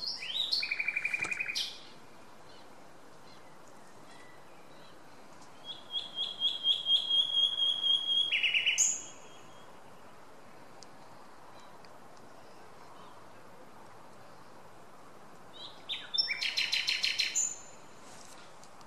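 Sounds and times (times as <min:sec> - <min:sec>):
common nightingale Luscinia megarhynchos singing whistled rattling and clicking phrases: 0:00.0 - 0:10.2, 0:15.5 - 0:17.9.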